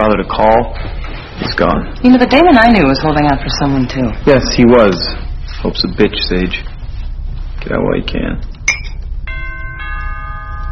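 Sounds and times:
speech: 0.1s - 6.8s, 7.6s - 8.5s
doorbell chiming: 8.7s - 10.7s.

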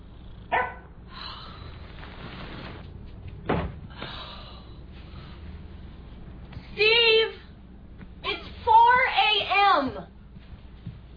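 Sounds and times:
low hum: 0.0s - 11.1s
dog barking: 0.5s - 0.9s.

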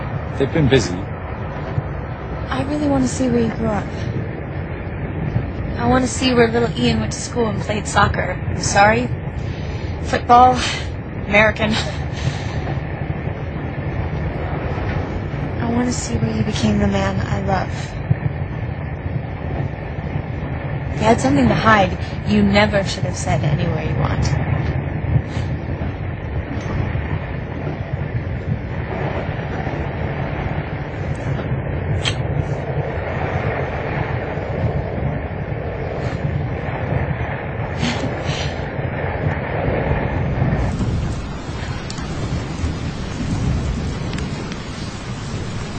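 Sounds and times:
rain: 0.0s - 45.7s
thunder rumbling: 0.0s - 45.7s
speech: 0.3s - 1.1s, 2.5s - 4.2s, 5.8s - 12.3s, 15.8s - 18.0s, 21.0s - 24.5s.

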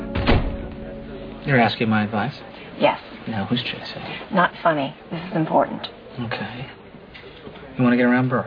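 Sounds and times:
heavy knocks: 0.1s - 0.8s
men's room door closing with a dull low thunk: 0.1s - 0.8s
speech: 1.5s - 6.8s, 7.8s - 8.4s.

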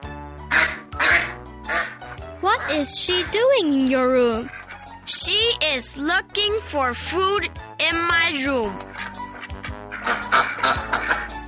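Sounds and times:
goose honking: 0.5s - 3.3s, 8.8s - 11.4s
speech: 2.4s - 9.0s, 10.1s - 11.0s.

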